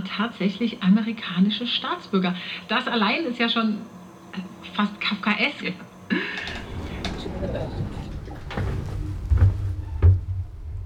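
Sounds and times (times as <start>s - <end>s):
speech: 0.1s - 6.6s
door swinging shut: 6.4s - 10.8s
low murmuring rumble: 6.4s - 10.8s.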